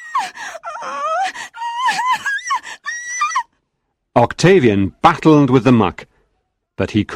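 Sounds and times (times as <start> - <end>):
girl crying and wailing: 0.0 - 3.5
speech: 4.2 - 6.1, 6.8 - 7.1.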